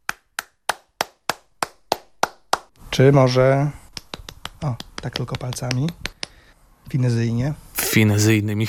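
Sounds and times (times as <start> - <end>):
hand claps with cupped and flat palms: 0.0 - 2.8, 3.9 - 6.4
speech: 3.0 - 3.8, 4.6 - 6.1, 6.9 - 8.6.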